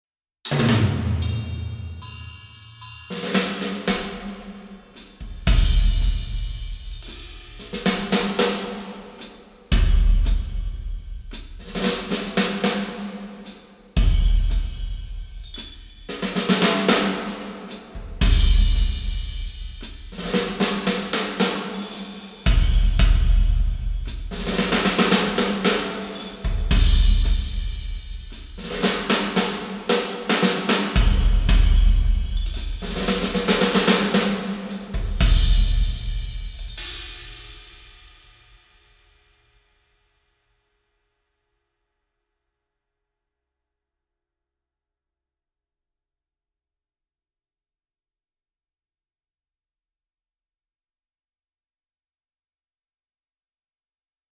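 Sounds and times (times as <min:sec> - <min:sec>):
drums played with sticks in a parking garage: 0:00.4 - 0:38.6.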